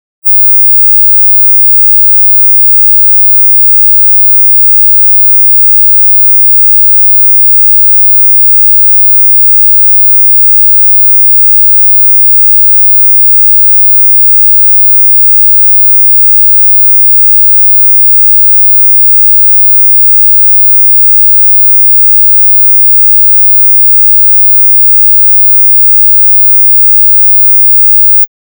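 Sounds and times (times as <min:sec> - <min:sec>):
19999 Hz sine wave at 0 dB in both channels: 0:00.2 - 0:28.4.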